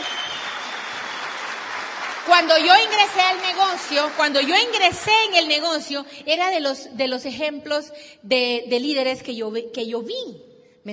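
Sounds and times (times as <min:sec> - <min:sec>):
audience applause: 0:00.0 - 0:05.5
speech: 0:02.3 - 0:10.9.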